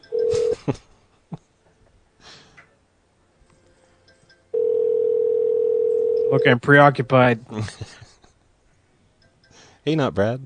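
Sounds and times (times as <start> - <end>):
telephone ringing with loud steady electronic tone: 0.0 - 0.6, 4.5 - 6.6
faint sniffs and breaths: 2.2 - 2.7
speech: 6.3 - 8.1, 9.8 - 10.4.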